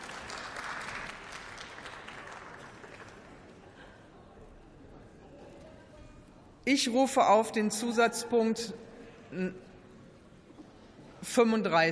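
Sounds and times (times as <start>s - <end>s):
large assembly applauding in a parliament chamber: 0.0s - 3.6s
speech: 6.7s - 9.6s, 11.4s - 11.8s.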